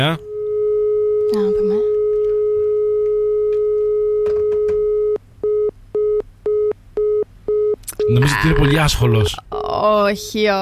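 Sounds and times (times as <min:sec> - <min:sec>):
speech: 0:00.0 - 0:00.3, 0:01.3 - 0:01.9, 0:08.2 - 0:10.6
telephone busy signal from an unanswered call: 0:00.2 - 0:08.3.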